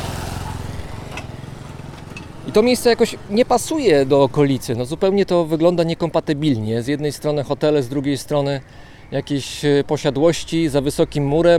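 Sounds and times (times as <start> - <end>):
motorcycle with small engine riding by: 0.0 - 3.8
speech: 2.4 - 11.5.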